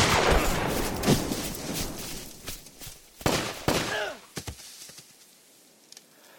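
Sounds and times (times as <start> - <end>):
gunfire in an ambush: 0.0 - 1.5, 3.2 - 4.1.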